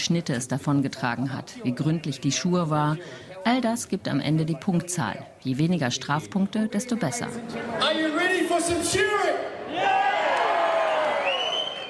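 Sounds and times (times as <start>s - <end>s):
speech: 0.0s - 9.5s
stadium crowd cheering and shouting at a sheep-shearing competition: 7.8s - 11.8s.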